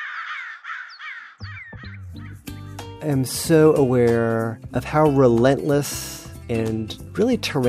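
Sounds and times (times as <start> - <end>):
several crows cawing harshly: 0.0 - 2.5
speech: 3.0 - 7.6.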